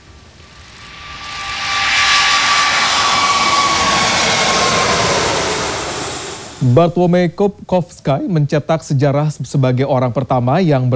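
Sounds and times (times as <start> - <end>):
Airbus A380 jet airliner engines roaring past: 0.0 - 7.4
speech: 6.6 - 10.9.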